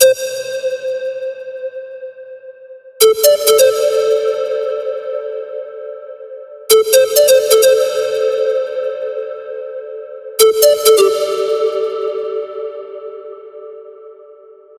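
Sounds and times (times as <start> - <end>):
90s Eurodance flute melody: 3.0 - 4.8, 6.7 - 9.2, 10.4 - 12.5.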